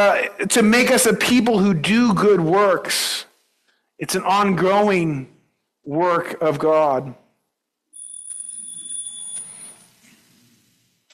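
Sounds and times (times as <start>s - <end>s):
speech: 0.0s - 3.3s, 4.0s - 7.2s
high electronic alarm tone: 8.0s - 9.8s.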